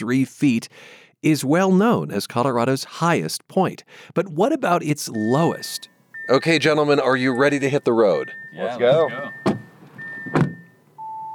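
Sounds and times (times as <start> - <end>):
speech: 0.0 - 9.6
steady electronic chime tones from a car dashboard: 5.1 - 11.3
three people getting into a car: 6.1 - 11.2
car door shutting with a solid thunk: 8.9 - 10.8.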